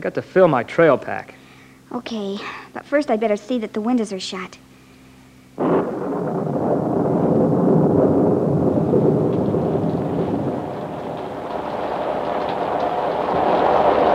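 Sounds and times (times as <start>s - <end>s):
speech: 0.0s - 4.6s
heavy rain pouring down in a thunderstorm: 5.6s - 14.1s
thunder crash: 5.6s - 14.1s.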